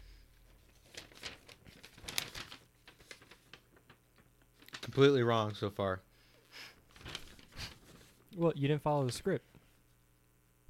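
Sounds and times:
paper being handled and crinkled: 0.5s - 5.7s, 6.9s - 8.3s, 8.9s - 9.4s
speech: 5.0s - 6.1s, 8.4s - 9.5s.

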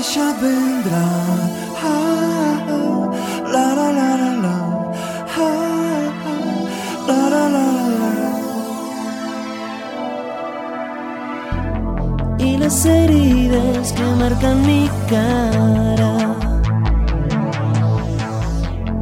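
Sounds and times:
music playing: 0.0s - 19.0s
speech: 0.1s - 2.2s, 12.7s - 16.4s.

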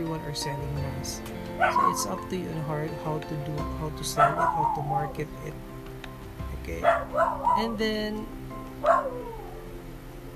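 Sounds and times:
speech: 0.0s - 5.7s, 6.6s - 9.0s
single short dog bark: 1.6s - 2.1s, 4.2s - 4.9s, 6.8s - 7.8s, 8.8s - 9.5s.

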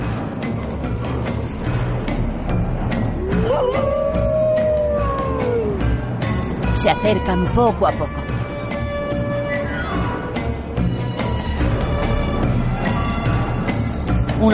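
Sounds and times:
dense rumbling background: 0.0s - 14.5s
wolf howling: 3.2s - 6.0s
speech: 6.8s - 8.3s.

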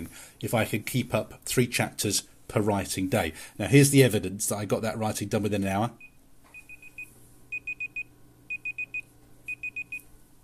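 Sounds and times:
speech: 0.1s - 6.1s
online timer alarm sounding rapid high-pitched electronic beeps: 6.0s - 10.1s.

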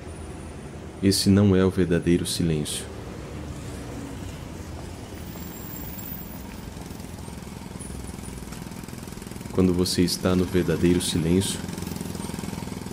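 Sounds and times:
speech: 1.0s - 2.9s, 9.6s - 11.8s
jackhammer pounding: 5.4s - 12.9s.

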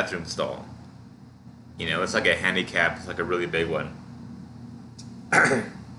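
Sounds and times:
speech: 0.0s - 0.8s, 1.8s - 4.0s, 5.3s - 5.8s
person coughing after eating a burger: 5.3s - 5.8s.

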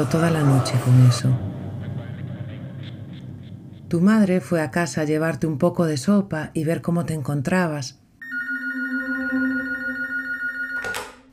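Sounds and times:
speech: 0.0s - 1.6s, 3.9s - 8.0s
telephone ringing with a long steady electronic tone: 8.2s - 11.3s.

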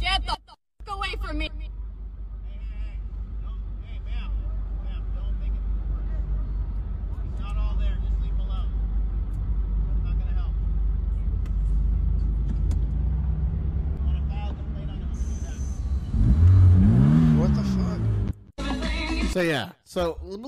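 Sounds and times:
speech: 0.1s - 0.4s, 19.4s - 20.4s
car engine revving with loud throaty exhaust: 3.1s - 18.5s.

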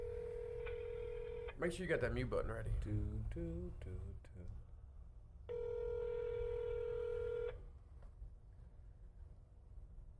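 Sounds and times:
electronic phone ring tone of an unanswered call: 0.0s - 1.6s, 5.5s - 7.6s
low noise: 0.0s - 10.1s
speech: 1.6s - 4.7s.

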